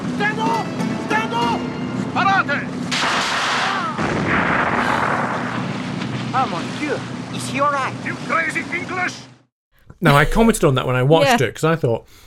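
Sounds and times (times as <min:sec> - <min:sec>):
speeding motorboat engine roaring: 0:00.0 - 0:09.5
gunshots during a motorboat chase: 0:02.9 - 0:05.6
speech: 0:06.9 - 0:09.2, 0:10.0 - 0:12.2.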